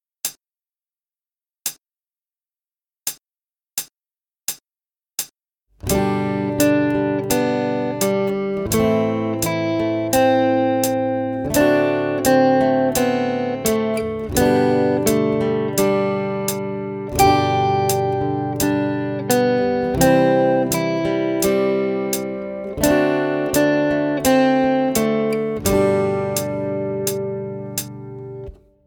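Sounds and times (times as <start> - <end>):
fast guitar playing on three strings: 5.8 - 28.7.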